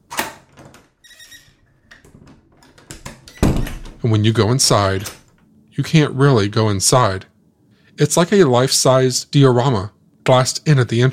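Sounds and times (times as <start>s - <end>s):
drawn-out high-pitched hinge creak of an old church door: 0.1s - 4.1s, 4.8s - 5.4s
heavy clunk of the latch of an old church door: 1.9s - 4.0s
speech: 4.0s - 5.2s, 5.8s - 7.3s, 8.0s - 11.1s.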